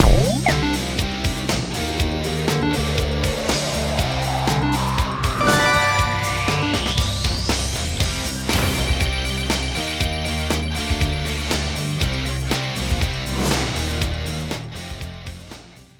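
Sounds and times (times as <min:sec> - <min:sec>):
rock music: 0:00.0 - 0:15.8.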